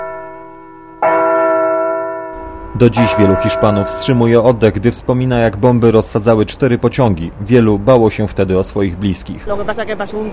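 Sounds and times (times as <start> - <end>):
church bell strike: 0.0 - 4.6
speech: 2.8 - 10.3.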